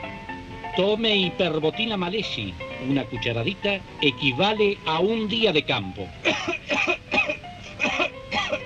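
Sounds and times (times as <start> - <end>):
speech: 0.7 - 7.0
person coughing: 6.3 - 8.6.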